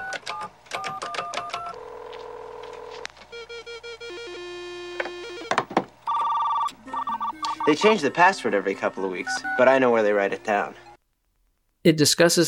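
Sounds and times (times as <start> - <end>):
telephone dialing into a school's computer with electronic tones and beeps: 0.0 - 5.5, 6.1 - 7.9, 9.2 - 9.8
speech: 7.7 - 10.8, 11.8 - 12.4.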